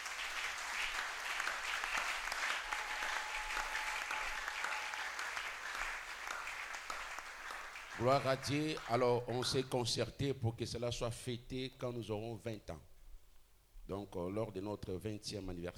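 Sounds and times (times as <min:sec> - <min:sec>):
large audience applause: 0:00.0 - 0:09.0
scattered cheers from an audience: 0:01.4 - 0:05.9
speech: 0:08.0 - 0:12.9, 0:13.9 - 0:15.7.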